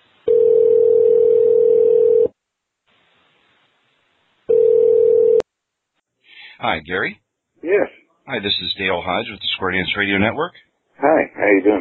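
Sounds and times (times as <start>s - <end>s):
telephone dial tone as a call is placed for a phone interview: 0.3s - 2.3s, 4.5s - 5.4s
speech: 6.6s - 11.7s.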